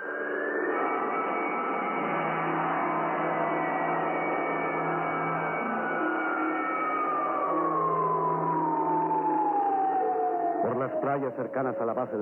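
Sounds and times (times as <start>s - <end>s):
general alarm siren wailing across a base: 0.1s - 12.2s
speech: 10.8s - 12.2s.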